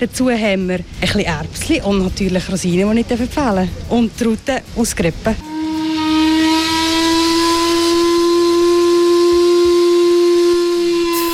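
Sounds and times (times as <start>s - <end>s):
speech: 0.0s - 5.5s
steamship whistle blowing: 5.4s - 11.3s.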